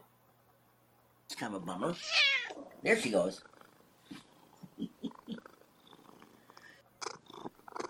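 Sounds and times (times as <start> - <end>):
speech: 1.4 - 3.5
female cat purring against the microphone: 2.1 - 7.8.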